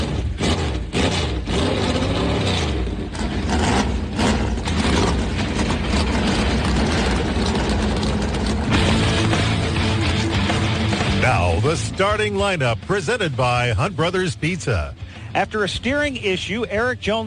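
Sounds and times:
multiple race car engines firing up and idling together: 0:00.0 - 0:17.2
speech: 0:11.7 - 0:17.2.

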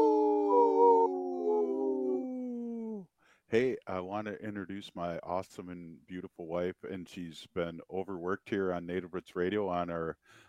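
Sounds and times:
wolf howling: 0:00.0 - 0:03.0
speech: 0:03.5 - 0:10.4.

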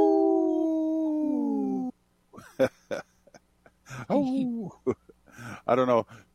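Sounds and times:
person imitating a wolf howl: 0:00.0 - 0:01.9
speech: 0:02.6 - 0:03.1, 0:03.9 - 0:05.0, 0:05.7 - 0:06.3.

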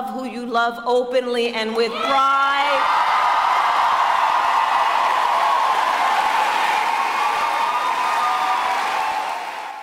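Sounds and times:
speech: 0:00.0 - 0:03.0
large rally crowd cheering: 0:01.9 - 0:09.8
large rally crowd applauding: 0:02.8 - 0:09.8.

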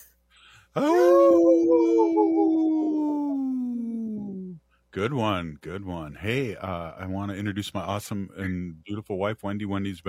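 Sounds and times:
speech: 0:00.7 - 0:03.1, 0:05.0 - 0:10.0
single long mournful wolf howl: 0:00.8 - 0:04.6.

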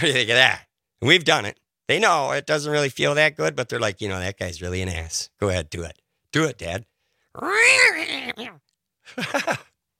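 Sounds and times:
speech: 0:00.0 - 0:09.7
cat wailing meow and chirpy mews: 0:07.4 - 0:08.6.

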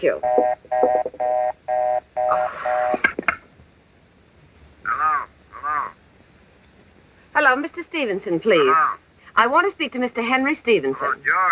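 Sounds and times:
speech: 0:00.0 - 0:01.4, 0:07.4 - 0:11.5
electronic ring tones of a telephone call to an office: 0:00.2 - 0:03.0.

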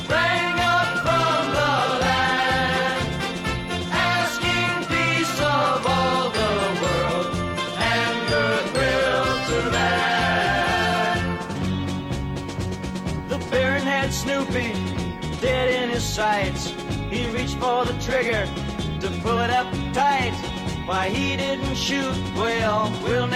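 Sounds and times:
loud full festive musical arrangement: 0:00.0 - 0:17.6
bright Christmas bells chiming: 0:03.7 - 0:11.4
speech: 0:17.4 - 0:23.3.

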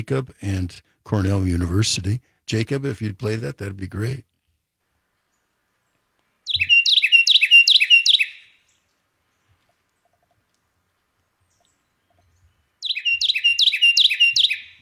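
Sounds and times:
speech: 0:00.0 - 0:04.3
loud Carolina wren song: 0:05.2 - 0:14.8.

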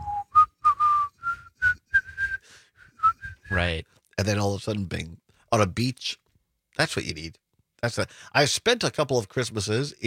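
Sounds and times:
man whistling a short bright melody from a beer advertisement: 0:00.0 - 0:03.6
speech: 0:03.5 - 0:06.2, 0:06.8 - 0:10.0.

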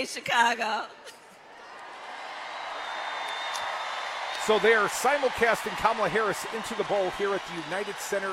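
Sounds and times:
speech: 0:00.0 - 0:01.2, 0:04.5 - 0:08.3
large indoor arena crowd cheering: 0:01.5 - 0:08.3
whoops: 0:02.0 - 0:05.2.

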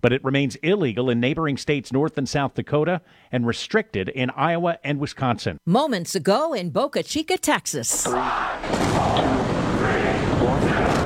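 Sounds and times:
speech: 0:00.0 - 0:09.4
SpaceX Starship rocket lifting off at Boca Chica Texas: 0:08.1 - 0:11.0.

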